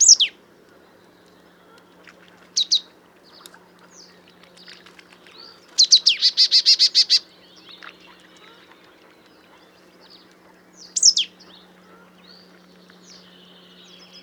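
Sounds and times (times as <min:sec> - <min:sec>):
marsh tit Poecile palustris calling: 0:00.0 - 0:00.4, 0:02.0 - 0:08.8, 0:10.8 - 0:11.4.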